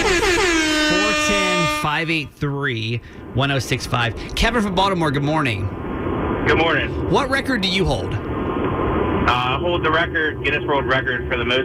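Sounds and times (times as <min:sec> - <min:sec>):
loud blaring air horn blasting: 0:00.0 - 0:02.1
speech: 0:01.9 - 0:05.8, 0:06.4 - 0:08.3, 0:09.3 - 0:11.6.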